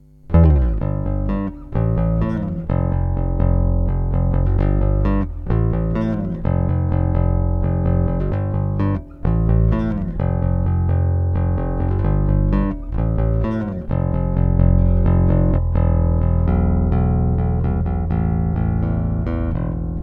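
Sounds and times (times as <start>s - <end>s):
open string plucked with a pick at the neck: 0.3s - 20.0s.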